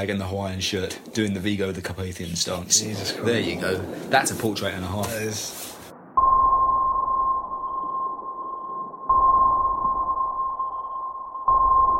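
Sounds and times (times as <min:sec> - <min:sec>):
speech: 0:00.0 - 0:05.7
low rumbling hiss: 0:00.0 - 0:06.2
sonar pings: 0:06.1 - 0:11.9.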